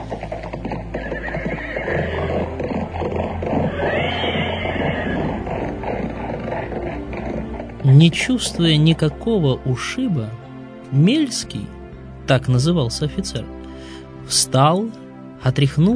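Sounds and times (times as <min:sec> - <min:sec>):
frightened carriage horses whinnying: 0:00.0 - 0:08.2
rumble of carriage team hooves bolting off the road: 0:00.0 - 0:09.1
speech: 0:07.9 - 0:13.5, 0:14.3 - 0:15.9.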